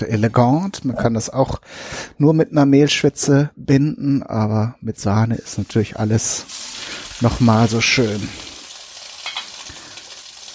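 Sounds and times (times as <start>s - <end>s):
speech: 0.0s - 8.5s
small pot of potatoes boiling over onto a hot stove sizzling: 5.5s - 10.5s.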